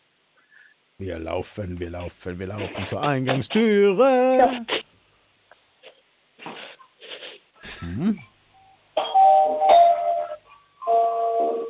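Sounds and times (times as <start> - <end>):
speech: 1.0 - 4.8, 8.0 - 8.3
brief vocal sounds: 7.6 - 8.3
doorbell playing a multi-note melody: 9.0 - 11.6.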